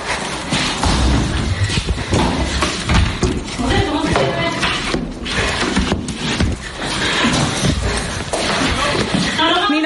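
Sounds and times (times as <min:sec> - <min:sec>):
movement noise during a scuffle: 0:00.0 - 0:09.7
door being banged during a scuffle at an office in a show flat: 0:00.8 - 0:04.4.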